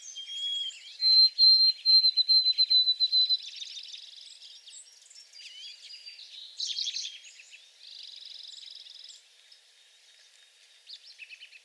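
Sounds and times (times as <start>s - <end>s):
white-throated sparrow whistled song in shrubs: 0.0s - 7.6s.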